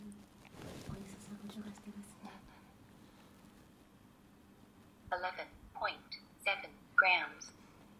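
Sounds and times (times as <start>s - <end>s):
faint hum: 0.0s - 7.9s
soft rustling: 0.1s - 4.0s.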